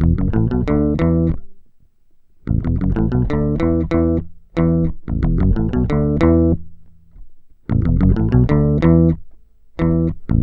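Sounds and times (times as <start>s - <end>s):
grungy bass grooves: 0.0s - 1.4s, 2.5s - 6.6s, 7.7s - 9.2s, 9.8s - 10.4s.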